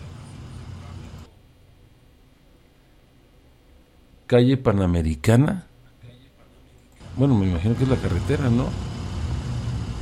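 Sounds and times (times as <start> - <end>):
heavy congested road traffic of idling and slow-moving vehicles: 0.0 - 1.3, 7.0 - 9.9
speech: 4.3 - 5.7, 7.2 - 8.9.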